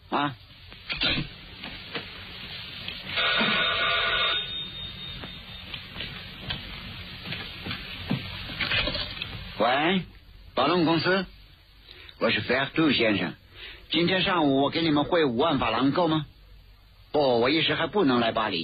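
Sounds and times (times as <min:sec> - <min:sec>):
faint hiss: 0:00.0 - 0:18.6
speech: 0:00.1 - 0:01.3, 0:10.9 - 0:11.4, 0:12.2 - 0:16.3, 0:17.1 - 0:18.6
telephone ringing with a bright buzzing trill: 0:03.1 - 0:05.9.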